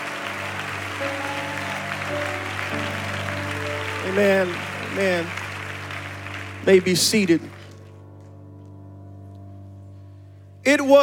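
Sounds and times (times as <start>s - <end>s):
large crowd clapping hands: 0.0s - 8.3s
speech: 4.1s - 5.4s, 6.6s - 7.6s, 10.6s - 11.0s.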